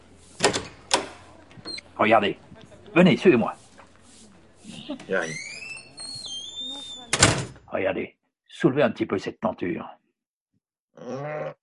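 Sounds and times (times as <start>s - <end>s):
chapel door being pushed open: 0.2s - 1.9s, 5.0s - 7.6s
speech: 2.0s - 3.6s, 4.9s - 5.5s, 7.7s - 10.0s.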